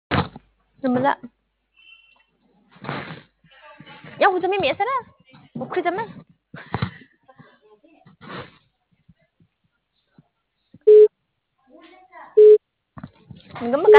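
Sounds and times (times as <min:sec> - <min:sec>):
speech: 0:00.8 - 0:01.4, 0:04.2 - 0:06.8, 0:13.6 - 0:13.9
telephone busy signal: 0:10.9 - 0:11.1, 0:12.4 - 0:12.6
recorded voice announcement: 0:13.6 - 0:13.9.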